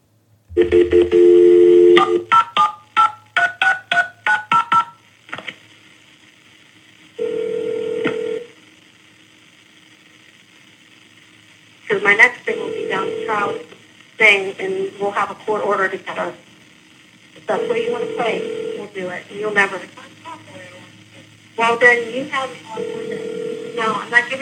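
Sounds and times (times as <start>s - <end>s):
phone dial tone: 0.5s - 4.9s, 7.2s - 8.5s, 12.6s - 13.6s, 17.6s - 18.9s, 22.8s - 24.0s
phone ring tone during call transfer to a police office: 0.5s - 4.9s, 7.2s - 8.5s, 17.9s - 18.8s, 22.8s - 23.9s
touch-tone telephone beeps: 0.5s - 4.9s
speech: 12.1s - 16.4s, 17.5s - 20.0s, 21.6s - 23.0s, 23.8s - 24.4s.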